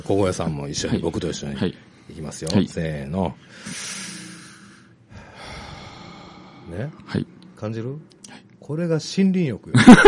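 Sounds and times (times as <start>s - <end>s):
speech: 0.1s - 4.0s, 6.7s - 10.0s
deep breath drawn in as a breathing exercise: 3.5s - 6.7s.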